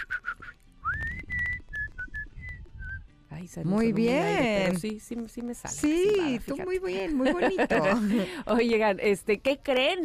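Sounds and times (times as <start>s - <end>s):
person whistling a simple melody: 0.0s - 3.1s
speech: 3.4s - 10.0s
laughter: 6.9s - 8.7s.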